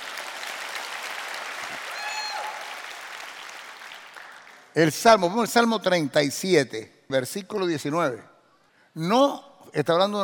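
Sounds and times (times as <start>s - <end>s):
crowd clapping in a large room: 0.0s - 4.8s
speech: 4.8s - 8.3s, 9.0s - 10.2s.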